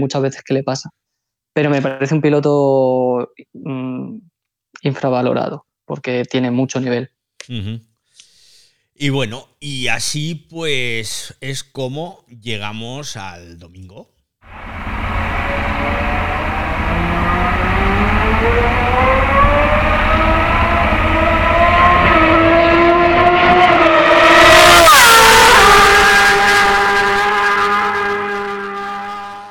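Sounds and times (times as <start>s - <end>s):
speech: 0.0s - 1.0s, 1.6s - 7.9s, 9.0s - 14.9s, 18.4s - 19.4s
racing motorcycle engines revving in a loud roaring pass: 14.5s - 29.4s.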